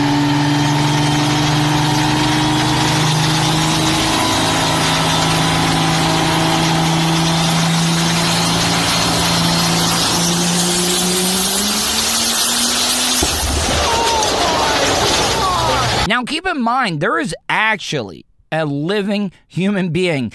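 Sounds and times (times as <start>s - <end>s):
truck engine revving on a riser: 0.0s - 16.1s
speech: 16.6s - 20.3s.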